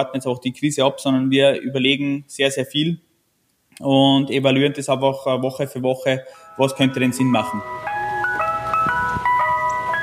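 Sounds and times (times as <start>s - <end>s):
speech: 0.0s - 3.1s, 3.8s - 8.0s
beer truck signal jingle, electronic chiming melody: 6.3s - 10.0s.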